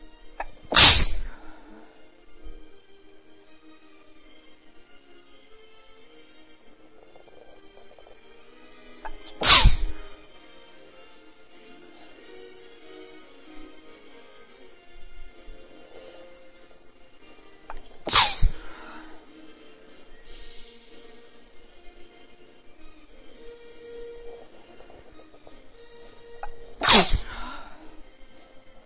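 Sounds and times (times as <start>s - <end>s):
female galactic sneezes: 0.4s - 1.4s, 9.1s - 10.1s, 17.7s - 18.9s, 26.4s - 27.7s.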